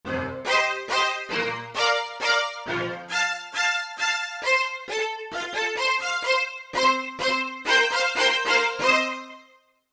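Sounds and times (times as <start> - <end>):
spiccato strings on a Korg MSC-1S: 0.1 - 9.5.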